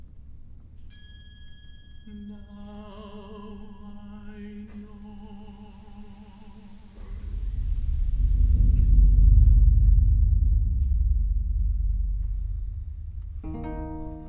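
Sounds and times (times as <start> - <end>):
rolling thunder: 6.2 - 14.2.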